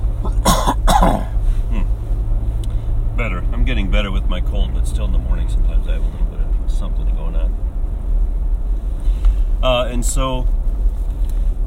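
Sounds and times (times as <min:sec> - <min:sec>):
steady low hum: 0:00.0 - 0:11.6
person coughing: 0:00.2 - 0:01.4
throat clearing: 0:00.2 - 0:01.9
speech: 0:03.2 - 0:07.7, 0:09.6 - 0:10.6.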